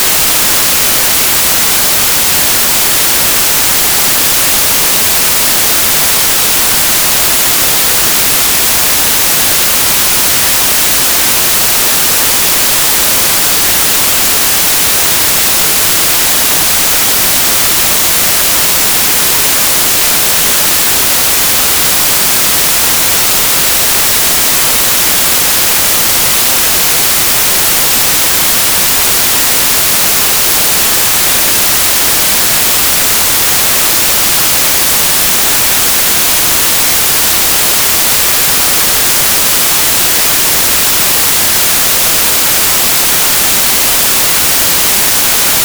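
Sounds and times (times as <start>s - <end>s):
white noise at 0 dBFS 96k 24bit: 0.0s - 45.6s.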